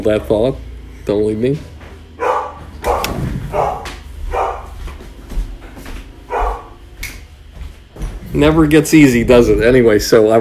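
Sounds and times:
speech: 0.0 - 1.7, 8.4 - 10.3
dog barking: 2.2 - 4.8, 6.3 - 6.8
low thumping: 2.8 - 3.9.

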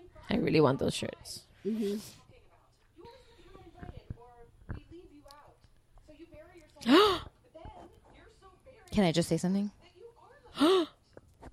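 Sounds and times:
speech: 0.3 - 2.2, 6.8 - 7.3, 9.0 - 9.8, 10.6 - 11.0
person gasping: 6.8 - 7.3.

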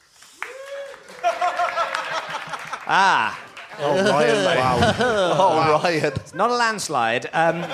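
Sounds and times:
live audience applause: 0.0 - 5.3
scattered voices and cheers: 0.3 - 6.2
rising vocal whoop: 0.4 - 1.2
laughter: 1.1 - 7.7
speech: 2.9 - 7.7.

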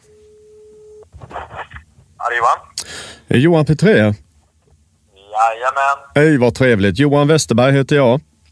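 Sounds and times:
telephone ringback tone while placing a call: 0.0 - 1.0
speech: 2.3 - 4.2, 5.4 - 8.3.

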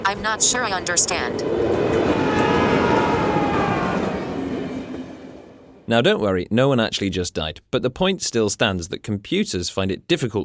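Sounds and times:
runaway railway trolley rushing along track: 0.0 - 6.2
speech: 0.1 - 2.5, 5.9 - 10.4.

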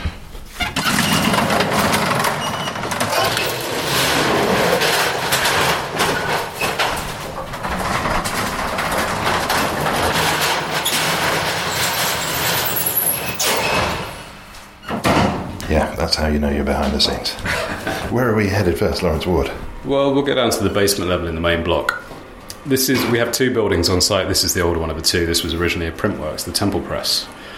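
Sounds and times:
old elevator door sliding with clanks: 0.0 - 15.2
old elevator running with mechanical rumble and rattling: 0.0 - 19.9
speech: 16.2 - 22.0, 22.6 - 27.5.

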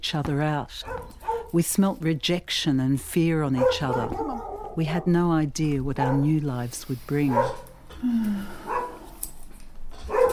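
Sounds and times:
speech: 0.0 - 8.6
dog barking: 0.8 - 1.6, 3.5 - 5.1, 6.0 - 6.3, 7.3 - 7.7, 8.7 - 9.1, 10.1 - 10.3.

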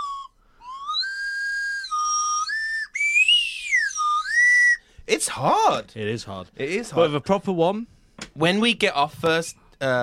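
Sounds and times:
slide whistle blown in long swooping notes: 0.0 - 4.9
speech: 5.1 - 10.0.

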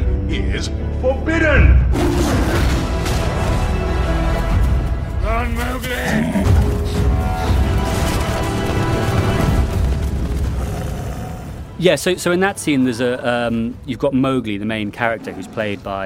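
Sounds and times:
orchestral texture in a cinematic soundscape: 0.0 - 14.4
speech: 0.6 - 1.8, 11.8 - 16.0
computer-generated tiger roaring in a film scene: 10.5 - 11.7, 15.0 - 16.0.

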